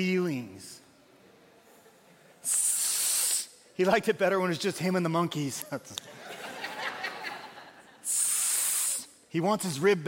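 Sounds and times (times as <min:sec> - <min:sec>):
speech: 0:00.0 - 0:00.7, 0:03.8 - 0:06.4, 0:09.3 - 0:10.0
person imitating a snake's hiss: 0:02.4 - 0:03.6, 0:08.0 - 0:09.2
laughter: 0:05.6 - 0:08.1.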